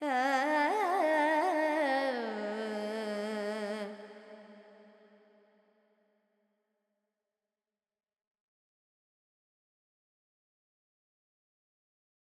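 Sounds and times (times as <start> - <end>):
Carnatic female vocal alap in raga Purvi Kalyani: 0.0 - 4.7.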